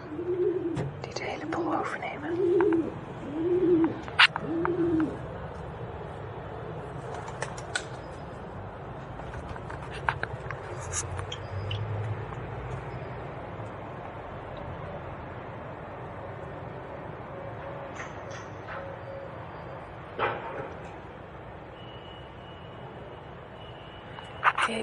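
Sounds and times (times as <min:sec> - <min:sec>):
pigeons cooing on a balcony: 0:00.0 - 0:05.4
faint outdoor noise: 0:00.0 - 0:24.8
speech: 0:00.8 - 0:03.1.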